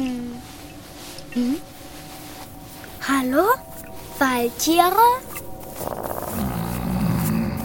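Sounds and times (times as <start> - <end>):
speech: 1.4 - 1.7, 3.1 - 5.3
wolf growling low and menacingly: 5.7 - 7.6.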